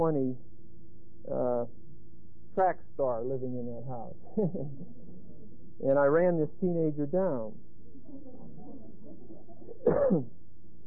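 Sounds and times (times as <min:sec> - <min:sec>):
speech: 0:00.0 - 0:00.5, 0:01.2 - 0:01.8, 0:02.6 - 0:05.0, 0:05.8 - 0:08.3, 0:09.8 - 0:10.4
laughter: 0:04.3 - 0:05.4, 0:07.8 - 0:10.0
person coughing: 0:09.8 - 0:10.3.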